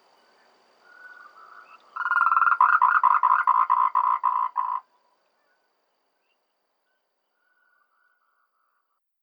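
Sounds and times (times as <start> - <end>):
tree frog croaking in Taiwan: 1.0 - 5.0.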